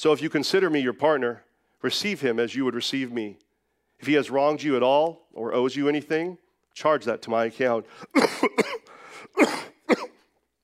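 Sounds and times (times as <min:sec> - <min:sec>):
speech: 0:00.0 - 0:08.7
person coughing with chesty raspy bursts: 0:08.1 - 0:10.3.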